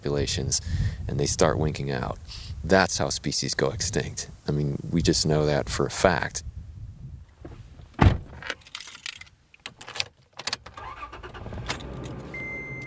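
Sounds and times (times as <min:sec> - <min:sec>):
speech: 0:00.0 - 0:06.5
pickup truck door thudding shut: 0:08.0 - 0:08.4
keys jangling: 0:08.5 - 0:10.6, 0:11.6 - 0:12.3
pickup truck engine humming: 0:10.8 - 0:12.8.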